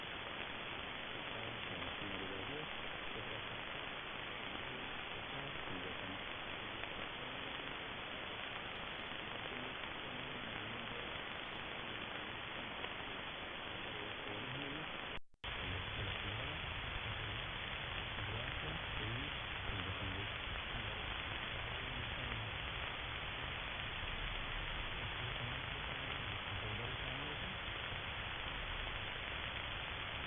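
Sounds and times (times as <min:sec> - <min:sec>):
AMS radio broadcast on 15090 kHz from Kuwait: 0:00.0 - 0:30.2.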